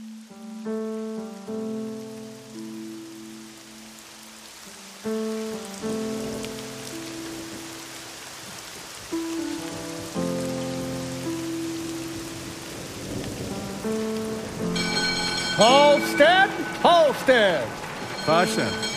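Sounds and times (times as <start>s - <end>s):
steady rain pattering on a hard surface: 0.0s - 18.9s
sustained chiming musical tones: 14.7s - 18.9s
speech: 15.6s - 18.8s.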